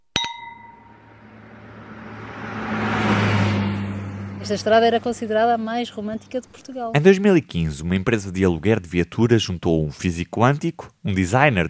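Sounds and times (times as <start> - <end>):
wine glasses clinking in a toast: 0.2 - 0.9
car engine rumble: 0.7 - 9.2
speech: 4.5 - 11.6.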